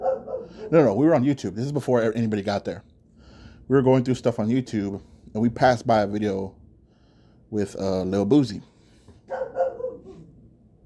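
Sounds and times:
dog barking: 0.0s - 0.8s, 9.3s - 10.3s
speech: 0.7s - 2.9s, 3.7s - 6.6s, 7.5s - 8.7s.

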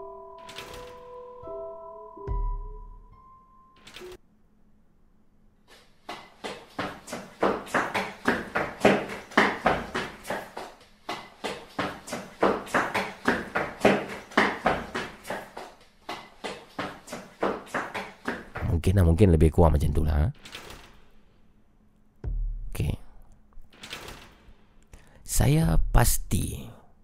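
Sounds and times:
tapping imitating running footsteps on wooden floor: 6.1s - 18.8s
speech: 18.9s - 20.7s, 25.4s - 26.8s.

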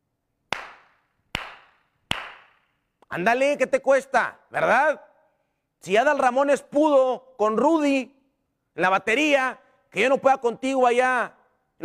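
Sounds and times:
hand claps in a reverberant room: 0.5s - 2.8s
speech: 3.1s - 5.1s, 5.8s - 8.2s, 8.8s - 11.8s.

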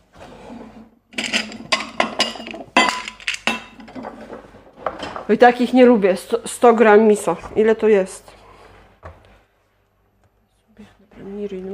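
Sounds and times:
ceramic bowl pulled from a stack and set down: 1.1s - 4.1s
speech: 5.3s - 8.4s.

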